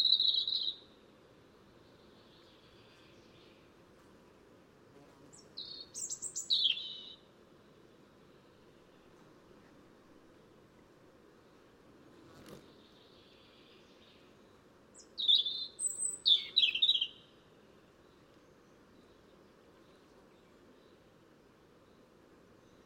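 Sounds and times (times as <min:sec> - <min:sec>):
European robin (Erithacus rubecula) song with high warbled phrases: 0:00.0 - 0:00.9, 0:05.3 - 0:07.2, 0:14.9 - 0:17.3.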